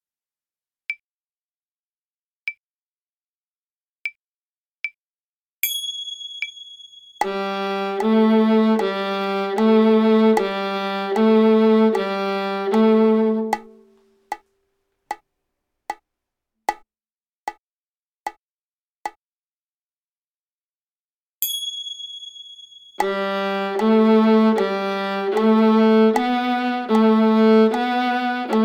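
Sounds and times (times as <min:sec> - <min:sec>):
viola G string played: 0:07.2 - 0:14.0, 0:23.0 - 0:28.6.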